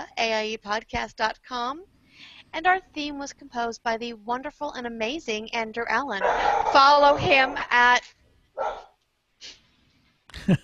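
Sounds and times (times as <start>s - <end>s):
speech: 0.2s - 8.8s, 10.3s - 10.6s
puppy giving a sharp high-pitched bark: 6.2s - 7.7s, 8.6s - 8.9s.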